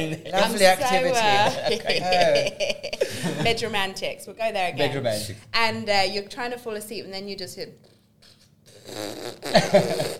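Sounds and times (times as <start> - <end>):
laughter: 0.0 - 3.8, 9.6 - 10.1
speech: 0.0 - 10.1
voice imitating a fart with a raspberry: 8.2 - 10.1.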